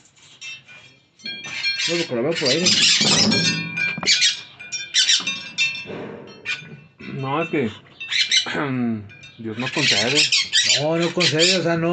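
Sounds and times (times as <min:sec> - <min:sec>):
parakeet squawking: 0:01.5 - 0:05.3, 0:07.5 - 0:08.5, 0:09.4 - 0:11.9
speech: 0:01.8 - 0:04.2, 0:07.3 - 0:07.9, 0:08.5 - 0:11.9.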